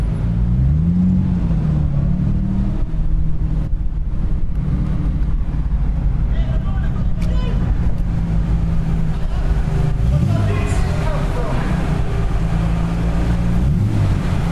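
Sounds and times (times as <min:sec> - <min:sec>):
car engines idling while boarding a ferry: 0:00.0 - 0:14.5
ferry crew man shouting: 0:06.3 - 0:07.6, 0:10.2 - 0:11.9.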